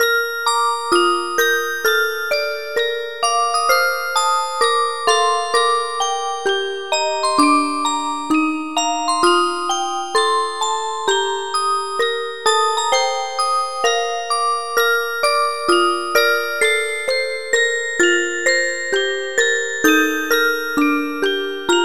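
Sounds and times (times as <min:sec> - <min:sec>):
music box melody: 0:00.0 - 0:21.8.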